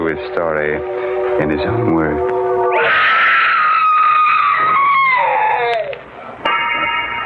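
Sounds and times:
speech: 0.2s - 3.0s
woman screaming: 2.7s - 5.9s.

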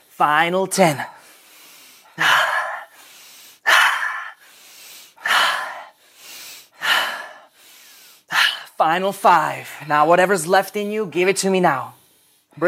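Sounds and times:
speech: 0.2s - 1.2s, 8.8s - 12.0s
deep rhythmic breathing during a breathwork session: 1.1s - 8.8s, 11.9s - 12.6s.

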